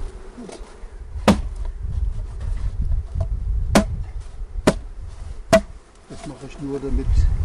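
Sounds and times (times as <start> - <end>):
honeybees humming around an open hard-polystyrene hive: 0.0 - 7.4
sharp knocks: 1.3 - 1.5, 3.7 - 4.0, 4.6 - 4.9, 5.5 - 5.8
speech: 6.3 - 7.4.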